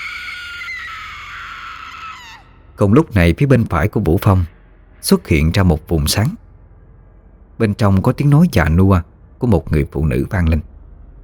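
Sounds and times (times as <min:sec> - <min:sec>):
girl screaming piercingly: 0:00.0 - 0:02.6
speech: 0:02.8 - 0:06.4, 0:07.6 - 0:10.7.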